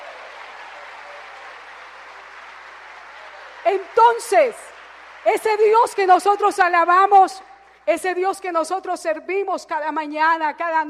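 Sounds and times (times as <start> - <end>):
audience applauding: 0.0 - 7.8
speech: 3.6 - 10.8.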